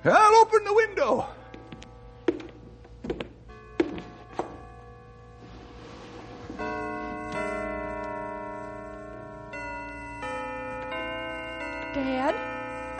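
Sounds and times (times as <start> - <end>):
church bells ringing in a continuous peal: 0.0 - 12.9
dull knocks and struck tones: 2.2 - 4.6.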